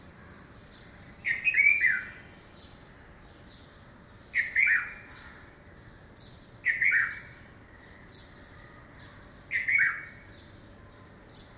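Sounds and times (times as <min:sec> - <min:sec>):
Red-vented bulbul calling: 0:00.6 - 0:02.7, 0:03.7 - 0:08.3, 0:09.0 - 0:10.6.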